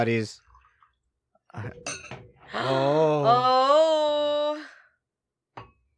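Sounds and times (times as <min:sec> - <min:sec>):
speech: 0:00.0 - 0:00.4, 0:01.5 - 0:03.9
wine glugging into a glass: 0:00.4 - 0:02.6
light glass clinks: 0:01.6 - 0:02.4.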